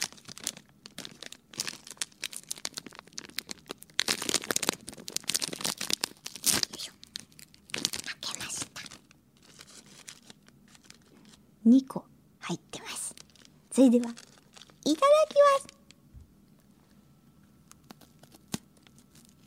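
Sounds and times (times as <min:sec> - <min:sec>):
plastic snack bag torn open and crinkled: 0:00.0 - 0:11.4, 0:12.8 - 0:16.0, 0:17.6 - 0:19.4
speech: 0:11.7 - 0:12.6, 0:13.8 - 0:14.2, 0:14.9 - 0:15.7.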